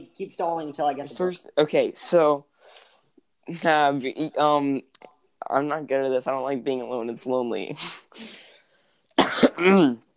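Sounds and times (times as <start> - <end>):
speech: 0.2 - 2.9, 3.5 - 8.5, 9.6 - 10.1
person coughing: 9.2 - 10.0.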